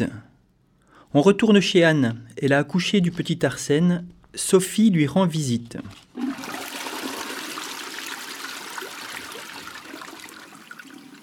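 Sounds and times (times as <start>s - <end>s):
speech: 1.1s - 6.2s
toilet flushing: 6.1s - 11.2s
faint trickle of water: 7.4s - 11.2s.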